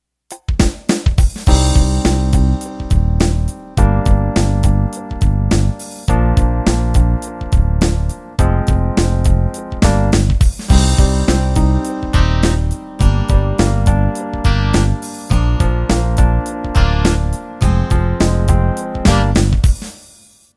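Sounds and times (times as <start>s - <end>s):
pop ballad intro: 1.5s - 19.8s.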